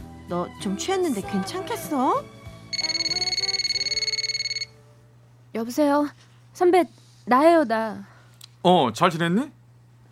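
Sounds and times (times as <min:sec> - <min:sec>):
quiet hum: 0:00.0 - 0:10.0
speech: 0:00.3 - 0:02.4, 0:05.5 - 0:09.6
telephone ringing before call is answered: 0:02.7 - 0:04.8.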